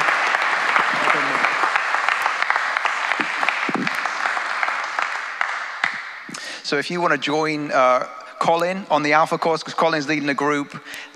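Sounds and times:
people cheering: 0.0s - 6.4s
audience applause: 0.0s - 6.5s
speech: 6.7s - 11.1s.

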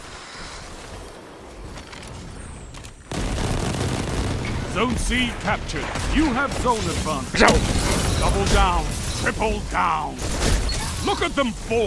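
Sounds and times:
gunfire in a multiplayer video game match: 2.4s - 9.6s
speech: 4.8s - 11.8s.

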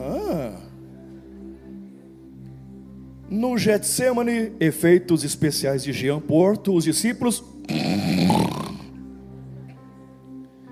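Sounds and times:
speech: 3.3s - 7.8s
person imitating a loud snore with their voice: 7.7s - 8.9s.

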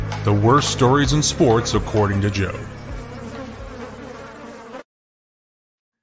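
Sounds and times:
speech: 0.2s - 2.8s
bee or wasp buzzing: 0.9s - 4.9s.

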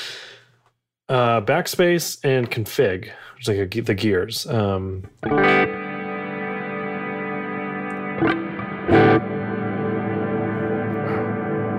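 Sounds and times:
speech: 1.1s - 5.8s
sustained guitar tone through a plate reverb effect: 5.2s - 11.7s.

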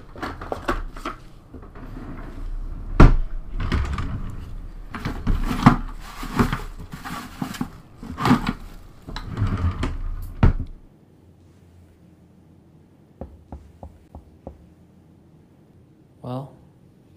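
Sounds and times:
wooden clattering and thumping: 0.0s - 10.9s
crisp knocks on a door: 13.2s - 14.7s.

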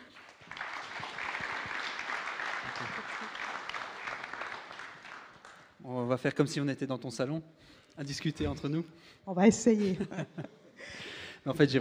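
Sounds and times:
audience applause: 0.0s - 5.8s
laughter: 2.4s - 3.8s, 9.8s - 10.8s
speech: 6.1s - 11.8s.

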